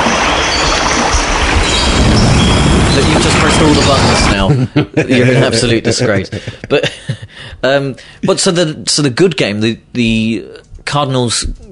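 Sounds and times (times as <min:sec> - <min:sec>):
ocean waves: 0:00.0 - 0:04.4
speech: 0:03.6 - 0:11.7
laughter: 0:04.3 - 0:08.6.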